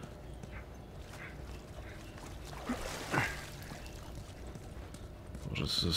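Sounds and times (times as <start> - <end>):
water trickling and gurgling in an echoing tunnel: 0.8 - 5.0
brighter splashes and knocks: 2.2 - 4.7
speech: 5.6 - 5.9.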